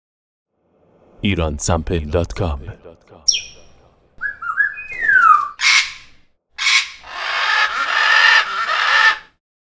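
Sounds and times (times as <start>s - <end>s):
parrot whistled notes: 3.3s - 9.2s.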